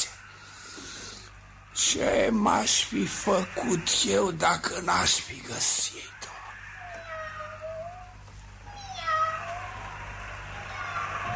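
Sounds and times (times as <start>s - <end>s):
faint steady hum: 0.0s - 11.3s
speech: 1.8s - 6.2s
cat meowing with drawn-out falling wail: 6.6s - 9.8s, 10.6s - 11.3s.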